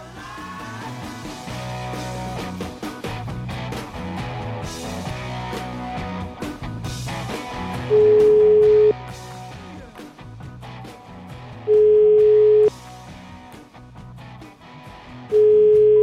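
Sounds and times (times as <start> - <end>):
telephone ringing tone while a call is placed: 7.9 - 9.0, 11.7 - 12.7, 15.4 - 16.0.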